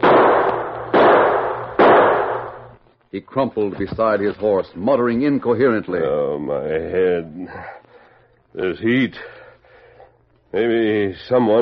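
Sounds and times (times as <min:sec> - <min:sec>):
gunshots fired into the air: 0:00.0 - 0:02.8
speech: 0:03.1 - 0:07.8, 0:08.5 - 0:09.4, 0:10.5 - 0:11.6.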